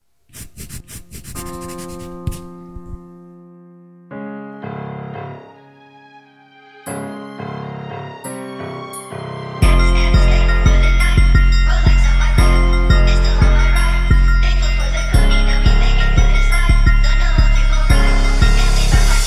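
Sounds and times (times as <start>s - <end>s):
pen scratching against a notebook page: 0.3s - 3.0s
sustained musical tones: 4.6s - 19.2s.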